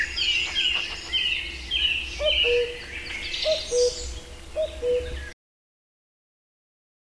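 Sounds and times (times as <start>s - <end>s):
high chirping from other birds: 0.0s - 5.4s.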